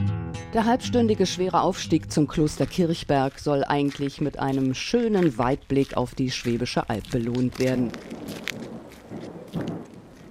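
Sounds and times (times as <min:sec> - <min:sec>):
speech: 0:00.5 - 0:08.4
low rumbles of thunder on a hilltop: 0:07.5 - 0:10.2
steady rain in a thunderstorm on a hilltop: 0:08.0 - 0:10.2.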